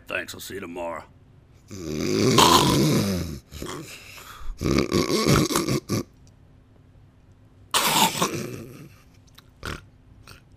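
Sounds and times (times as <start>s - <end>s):
speech: 0.1s - 3.0s, 3.6s - 6.1s
person snoring while sleeping in bed: 1.7s - 6.1s, 8.0s - 9.0s.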